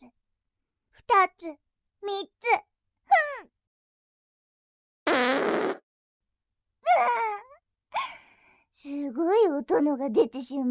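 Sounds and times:
speech: 0:01.0 - 0:03.5, 0:08.8 - 0:10.6
loud fart noises: 0:05.0 - 0:05.9.

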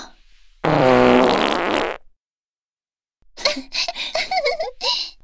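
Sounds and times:
loud double fart from two people: 0:00.6 - 0:02.1
people giggling and laughing: 0:03.4 - 0:04.9.

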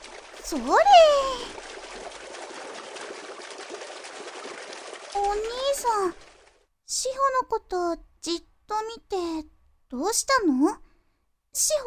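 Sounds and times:
water splashing and sloshing in a large bathtub as someone swims: 0:00.0 - 0:07.1
speech: 0:00.5 - 0:01.6, 0:05.2 - 0:06.3, 0:06.9 - 0:10.8, 0:11.6 - 0:11.8.

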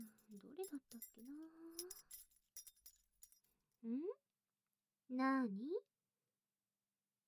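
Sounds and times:
speech: 0:00.0 - 0:02.3, 0:03.8 - 0:04.2, 0:05.1 - 0:05.9
large bunch of keys jangling: 0:00.0 - 0:03.6.

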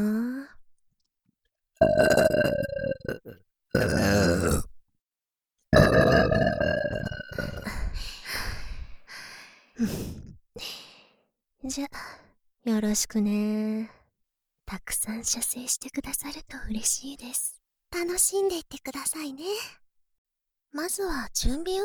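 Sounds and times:
person burping deep and croaky: 0:01.8 - 0:04.8, 0:05.8 - 0:08.0
speech: 0:11.8 - 0:14.0, 0:14.8 - 0:19.8, 0:20.7 - 0:21.8.

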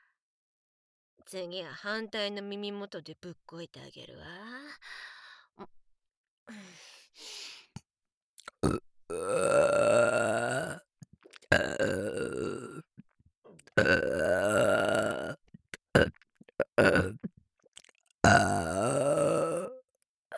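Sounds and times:
speech: 0:01.3 - 0:05.8
loud burping: 0:08.4 - 0:12.9, 0:13.6 - 0:19.8.

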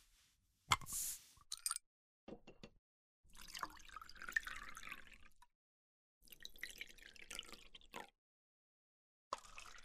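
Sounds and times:
beer glugging and splashing into a glass: 0:03.3 - 0:05.4, 0:06.2 - 0:08.1, 0:09.4 - 0:09.8.

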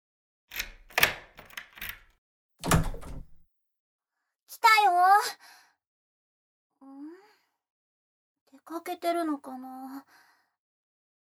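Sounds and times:
spare key clicking and rattling in a door lock: 0:00.5 - 0:03.2
door bolt turning with a clunk: 0:00.5 - 0:03.4
speech: 0:04.5 - 0:05.6, 0:08.7 - 0:10.2.

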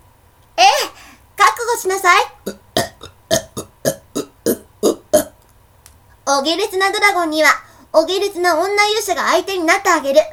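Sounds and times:
speech: 0:01.8 - 0:02.6, 0:06.3 - 0:10.3
short loud burps: 0:02.3 - 0:05.4.

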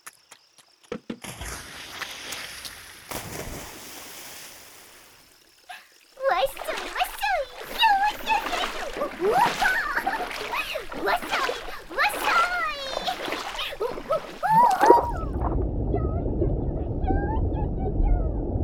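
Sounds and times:
hot bath water splashing in a tub: 0:01.2 - 0:18.3
vocal sounds: 0:10.4 - 0:18.5.

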